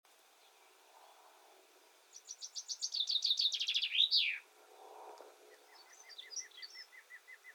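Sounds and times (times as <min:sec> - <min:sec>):
common chaffinch Fringilla coelebs singing a rattling trill: 0:00.1 - 0:04.5, 0:05.5 - 0:07.5
another bird chirping softly: 0:01.8 - 0:04.5, 0:05.5 - 0:07.5.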